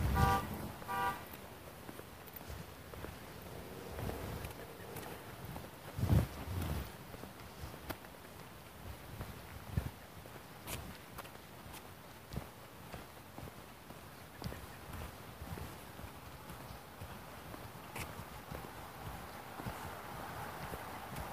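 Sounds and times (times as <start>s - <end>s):
car alarm honking: 0.0s - 1.3s
outdoor rustles: 0.0s - 21.3s.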